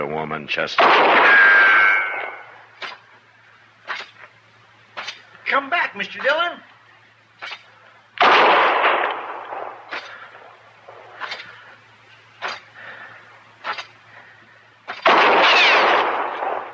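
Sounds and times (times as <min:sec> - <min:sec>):
speech: 0:00.0 - 0:01.5, 0:05.6 - 0:06.7
gunshots in an Old West standoff: 0:00.8 - 0:03.0, 0:08.2 - 0:11.4, 0:14.9 - 0:16.7.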